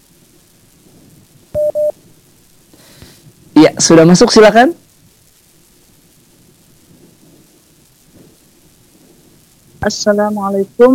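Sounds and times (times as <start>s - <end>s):
faint hum: 0.0s - 10.9s
electronic beeps of a phone line connecting: 1.6s - 2.0s
speech: 3.8s - 4.8s, 9.8s - 10.9s.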